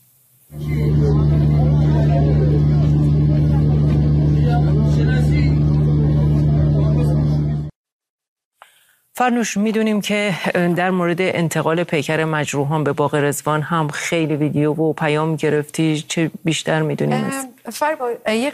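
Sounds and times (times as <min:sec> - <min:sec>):
indistinct voices: 0:00.5 - 0:07.7
idling and slow-moving car engines in congested traffic: 0:00.6 - 0:07.7
speech: 0:09.2 - 0:18.5.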